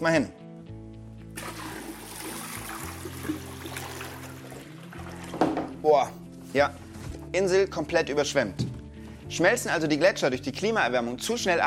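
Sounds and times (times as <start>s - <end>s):
speech: 0.0s - 0.4s, 5.9s - 11.6s
water poured from a container into a basin around a model island: 1.4s - 5.4s.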